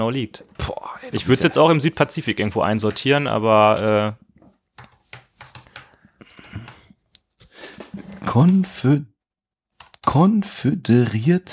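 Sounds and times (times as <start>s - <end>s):
speech: 0.0s - 4.2s, 8.3s - 9.1s, 10.1s - 11.5s
typing on a computer keyboard: 4.8s - 6.8s.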